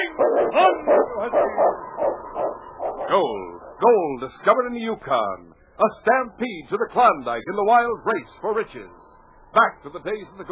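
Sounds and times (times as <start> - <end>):
lead sled dog of the Northwest barking and yipping: 0.0 - 3.2
speech: 3.2 - 10.5.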